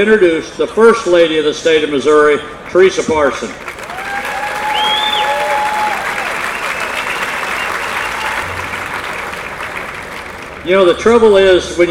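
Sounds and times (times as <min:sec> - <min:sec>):
speech: 0:00.0 - 0:03.7, 0:10.6 - 0:11.8
sustained applause from a large audience: 0:03.6 - 0:10.7
scattered whoops and cheers from audience: 0:03.8 - 0:08.8.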